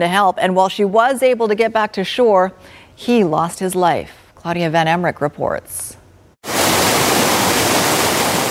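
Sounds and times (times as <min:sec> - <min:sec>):
speech: 0:00.0 - 0:06.0
waterfall rushing loudly: 0:06.5 - 0:08.4.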